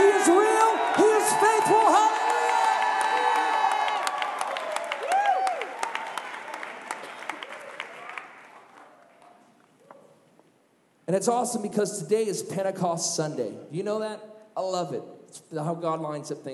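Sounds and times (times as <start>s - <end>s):
crowd shouting and whooping in praise to God: 0.0s - 8.2s
crowd applauding: 0.0s - 9.5s
speech: 11.2s - 16.5s.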